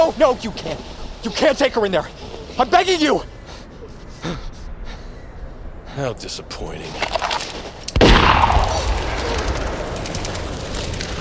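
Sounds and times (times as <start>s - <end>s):
speech: 0.1s - 3.3s, 4.2s - 4.5s, 6.0s - 7.3s
single gunshot outdoors in the snow: 8.0s - 9.8s.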